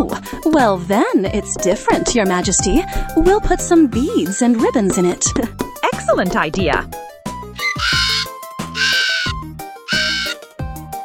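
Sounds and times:
speech: 0.5 - 7.0, 7.8 - 8.0
parrot squawking: 7.6 - 10.4.

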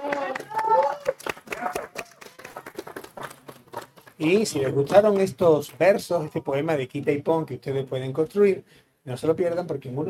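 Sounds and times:
brief cheer: 0.0 - 2.5
scattered audience applause: 0.0 - 5.2
speech: 4.2 - 10.0.

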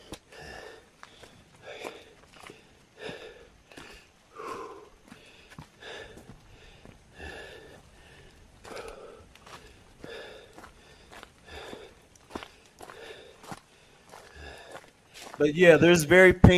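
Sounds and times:
person panting while hiking uphill: 0.0 - 15.4
footsteps crunching on a trail: 0.0 - 16.0
speech: 15.4 - 16.5.

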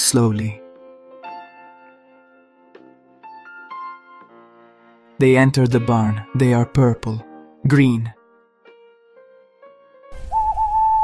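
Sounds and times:
speech: 0.1 - 0.6, 5.2 - 8.2
Scops owl giving a whistled single-pitched call: 10.2 - 11.0.

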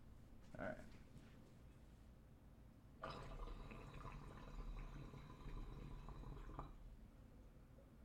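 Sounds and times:
quiet rustling: 0.1 - 2.2
water bubbling through a large glass bong: 3.0 - 6.8.

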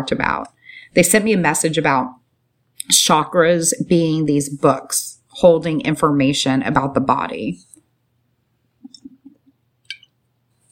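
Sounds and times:
speech: 0.0 - 2.2, 2.8 - 7.7
person gulping water: 8.8 - 10.1.

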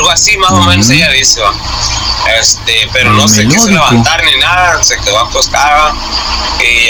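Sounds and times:
speech: 0.2 - 6.8
person imitating a teasing mocking whistle: 0.5 - 1.1, 3.1 - 4.1.

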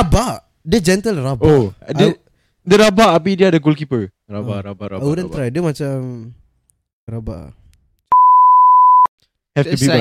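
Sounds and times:
speech: 0.0 - 6.4, 7.1 - 7.6, 9.6 - 9.9
loud electronic censor beep tone: 8.1 - 9.1.

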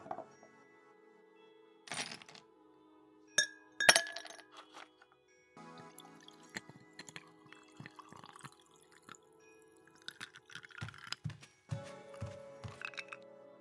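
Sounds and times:
glasses clinking: 1.9 - 2.4, 3.4 - 5.0, 6.2 - 11.4, 12.1 - 13.2
drink trickling and dripping into a glass: 5.8 - 11.2.

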